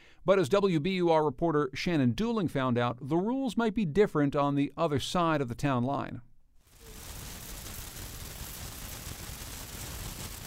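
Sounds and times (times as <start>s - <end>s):
speech: 0.2s - 6.3s
lawn sprinkler spraying water across grass: 6.7s - 10.4s.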